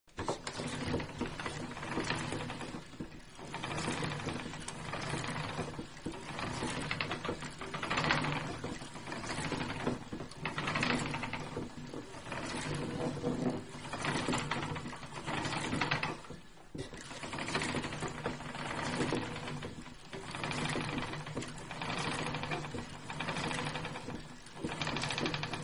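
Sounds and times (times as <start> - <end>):
spinning wheel turning: 0.2 - 16.4, 17.0 - 25.6.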